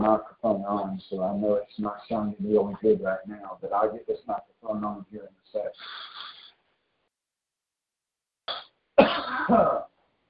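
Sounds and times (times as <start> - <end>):
speech: 0.0 - 6.2, 8.5 - 9.9
preacher coughing: 8.5 - 9.9
preacher clearing throat: 8.5 - 10.0.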